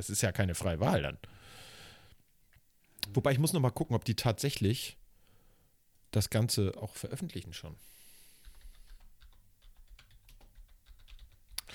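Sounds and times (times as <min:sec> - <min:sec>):
speech: 0:00.0 - 0:01.6, 0:03.0 - 0:05.0, 0:06.1 - 0:08.0
typing on a loud computer keyboard: 0:08.4 - 0:11.7.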